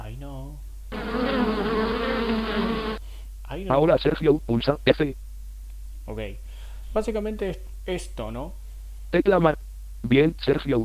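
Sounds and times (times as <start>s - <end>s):
bee buzzing: 0.9s - 3.0s
speech: 3.6s - 5.3s, 6.1s - 10.8s.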